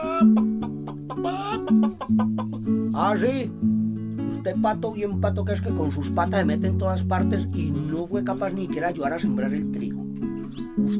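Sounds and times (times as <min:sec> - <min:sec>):
hen clucking: 0:00.0 - 0:04.0
speech: 0:03.0 - 0:03.7, 0:04.4 - 0:10.0, 0:10.8 - 0:10.9.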